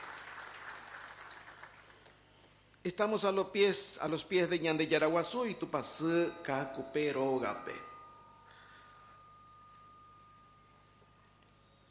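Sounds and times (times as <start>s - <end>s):
church congregation applauding at a Sunday mass: 0.0s - 2.3s
speech: 2.8s - 7.9s.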